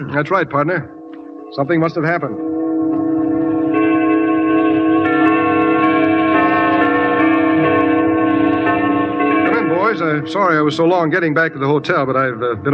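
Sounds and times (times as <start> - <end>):
speech: 0.0 - 2.6, 10.0 - 12.7
church bells of a coal town ringing together: 0.0 - 12.7.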